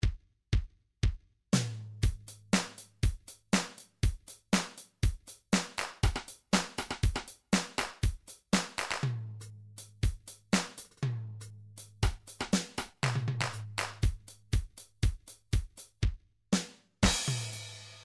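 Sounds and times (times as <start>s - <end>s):
MIDI electro drums: 0.0s - 16.2s, 17.0s - 18.0s.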